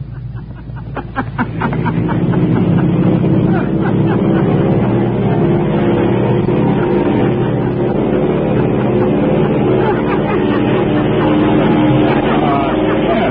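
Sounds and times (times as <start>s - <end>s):
airplane engines roaring during takeoff: 0.0s - 13.2s
man laughing: 0.0s - 13.2s.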